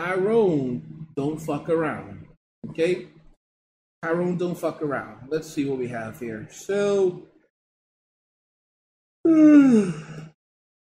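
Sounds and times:
speech: 0.0 - 3.2, 4.0 - 7.3, 9.3 - 10.1
person yawning playfully: 9.2 - 10.4.

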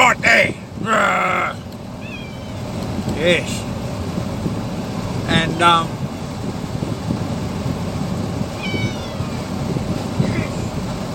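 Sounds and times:
dense rumbling noise: 0.0 - 11.1
cat meowing: 2.0 - 2.7, 8.6 - 9.5
speech: 3.2 - 3.6, 5.6 - 6.0.

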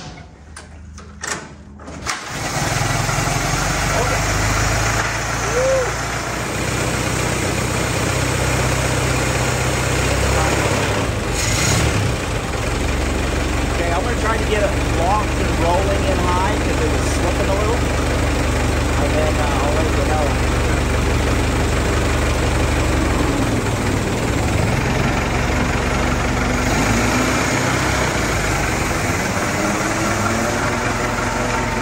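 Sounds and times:
car engine cranking on a dyno with timing retarded: 0.7 - 7.3, 8.1 - 31.8.

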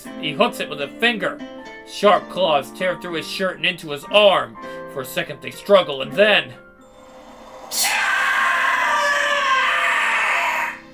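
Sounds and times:
speech: 0.2 - 6.6, 7.7 - 8.0
creature screeching shrill and whistle-like: 7.0 - 10.9.

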